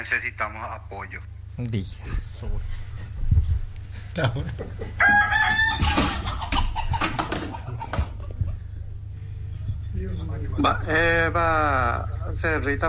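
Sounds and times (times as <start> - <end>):
speech: 0.0 - 3.6, 4.2 - 7.2, 10.0 - 12.8
hens clucking: 4.8 - 8.9.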